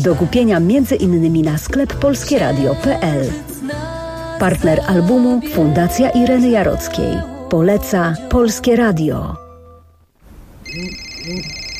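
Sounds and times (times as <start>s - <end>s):
speech: 0.0s - 9.4s, 10.7s - 11.6s
telephone ringing with a call from a medical clinic: 10.6s - 11.7s.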